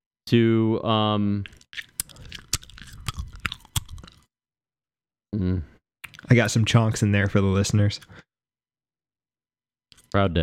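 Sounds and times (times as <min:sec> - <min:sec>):
speech: 0:00.3 - 0:01.8, 0:06.3 - 0:08.2, 0:10.1 - 0:10.4
wet chewing of gum with smacking and clicking: 0:01.4 - 0:04.3.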